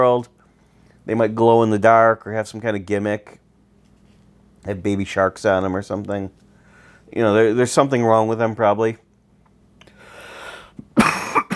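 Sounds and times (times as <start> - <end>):
speech: 0.0 - 0.4, 1.0 - 3.4, 4.6 - 6.4, 7.1 - 9.0
brief rising breath: 9.9 - 10.8
person coughing: 11.0 - 11.5.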